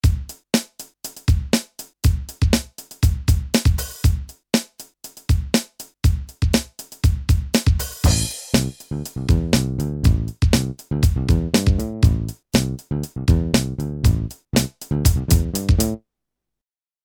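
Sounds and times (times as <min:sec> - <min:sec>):
Kawai XD-5 drum groove: 0:00.0 - 0:16.0
Kawai XD-5 bass: 0:08.0 - 0:16.0.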